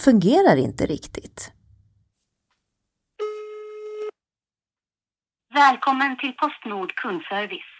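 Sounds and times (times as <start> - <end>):
speech: 0.0 - 1.6, 5.6 - 7.7
telephone ringback tone on a call to customer service: 3.2 - 4.1.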